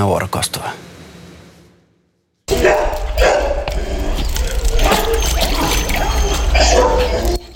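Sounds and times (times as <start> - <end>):
busy outdoor din: 2.5 - 7.5
stray dogs barking at an animal shelter: 2.5 - 7.5.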